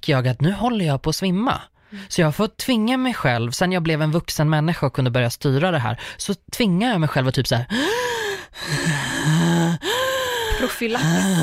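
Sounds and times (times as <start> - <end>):
speech: 0.0 - 9.4, 10.6 - 11.4
voiced gasps of deliberate forceful breathing: 7.7 - 10.9.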